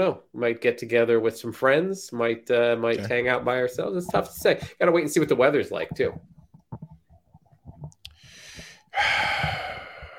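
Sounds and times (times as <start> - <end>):
speech: 0.0 - 6.3, 9.0 - 9.6
heavy breathing: 8.1 - 10.1.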